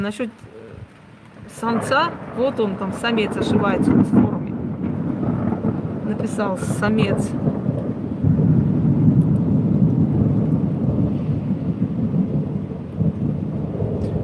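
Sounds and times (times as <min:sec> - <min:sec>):
speech: 0:00.0 - 0:00.6, 0:01.5 - 0:04.4, 0:06.1 - 0:07.6
steady rain pattering: 0:00.0 - 0:14.2
deep continuous rumble of thunder: 0:00.7 - 0:14.2.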